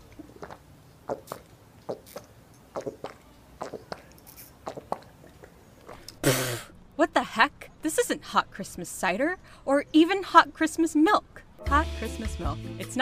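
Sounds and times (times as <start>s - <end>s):
slurps and gulps: 0.2s - 6.4s
person sipping a drink: 0.2s - 6.7s
speech: 1.1s - 3.1s, 7.4s - 13.0s.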